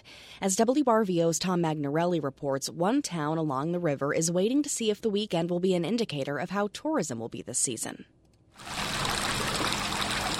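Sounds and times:
speech: 0.4 - 8.8
rushing, trickling water from pumps draining flooded basements at shoreline properties: 8.6 - 10.3.

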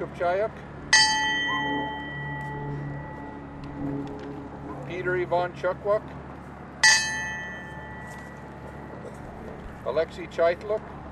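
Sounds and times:
speech: 0.0 - 0.7, 4.9 - 6.2, 9.9 - 10.9
memorial bell tolling: 0.9 - 4.0, 6.8 - 8.3.

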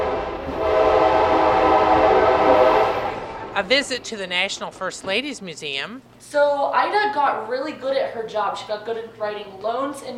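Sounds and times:
historic train whistle: 0.0 - 3.5
historic train rolling along: 0.0 - 5.2
speech: 3.6 - 10.1.

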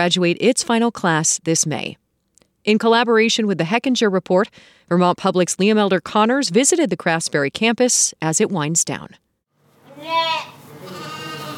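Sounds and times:
speech: 0.0 - 2.0, 2.6 - 9.2, 10.0 - 11.1
livestock noise in a farm barn: 9.9 - 11.5
sheep bleating in a student-run college farm barn during lambing season: 9.9 - 11.5.

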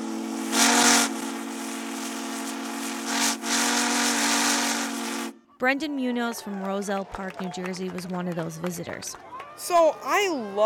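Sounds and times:
steam locomotive whistle at Steamtown National Historic Site in Scranton blowing: 0.0 - 5.6
speech: 5.6 - 10.6.

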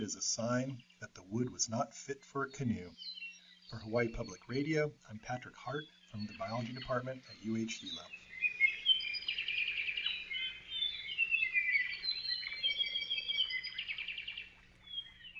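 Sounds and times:
speech: 0.0 - 8.2
Elepaio bird song in Hawaii: 0.0 - 15.3
faint low hum: 0.0 - 15.3.

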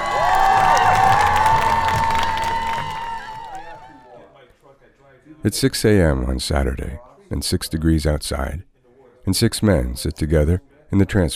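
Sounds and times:
large crowd cheering and shouting at a water show: 0.0 - 4.2
speech: 5.4 - 11.3.

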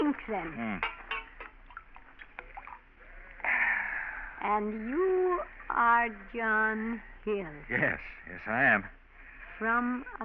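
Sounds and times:
speech: 0.2 - 1.1, 4.4 - 9.0, 9.6 - 10.2
knocks and drips: 0.8 - 2.9.

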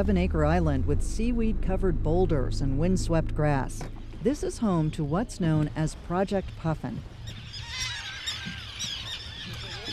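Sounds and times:
speech: 0.0 - 7.8
wind on an exposed island: 0.0 - 9.9
hundreds of gulls and terns screeching at a seabird colony on Eastern Egg Rock: 7.2 - 9.9.

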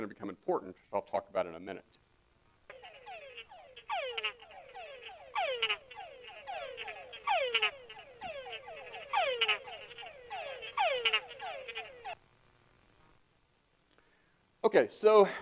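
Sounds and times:
speech: 0.0 - 2.0, 14.6 - 15.4
male túngara frog calling: 2.7 - 12.2.

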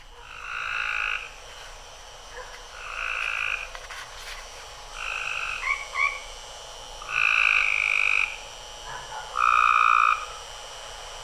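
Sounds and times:
frog squawking call outside a home in Lufkin Texas: 0.2 - 1.4, 5.0 - 6.3, 7.0 - 8.4, 9.4 - 10.4.

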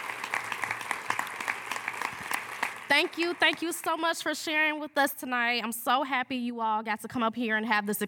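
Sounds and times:
crowd applauding with many hands clapping: 0.0 - 4.2
speech: 2.9 - 8.0.

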